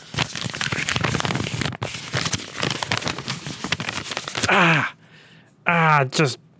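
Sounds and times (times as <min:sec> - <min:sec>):
sheet of paper crinkling and rustling while being tested for tearing: 0:00.0 - 0:04.6
people talking: 0:05.7 - 0:06.4.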